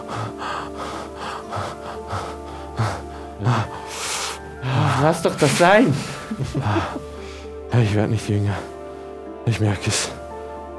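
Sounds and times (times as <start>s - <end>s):
man gasping as he opens his eyes: 0.0s - 7.5s
soft sustained music: 0.0s - 10.7s
speech: 3.4s - 3.8s, 5.0s - 7.1s, 7.7s - 8.7s, 9.5s - 10.2s
laughter: 4.6s - 8.4s.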